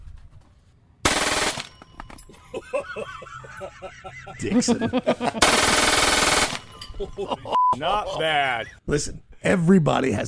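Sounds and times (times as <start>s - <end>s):
Glock 18C pistol firing a full-auto burst: 1.1s - 1.7s, 5.4s - 6.7s
clattering and ringing after a pistol burst: 1.6s - 2.6s, 6.5s - 7.2s
laughter: 2.4s - 5.6s, 6.8s - 8.9s
speech: 2.7s - 10.2s.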